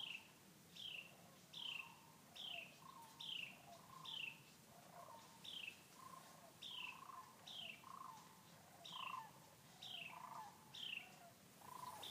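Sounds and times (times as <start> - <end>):
Carolina wren cheer calls at Bosque del Apache in New Mexico: 0.0 - 12.0.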